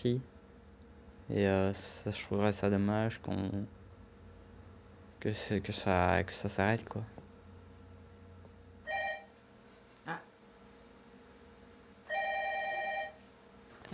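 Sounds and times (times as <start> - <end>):
speech: 0.0 - 0.3, 1.3 - 3.8, 5.2 - 7.2
telephone ringing with electronic trill: 8.8 - 9.4, 12.0 - 13.2.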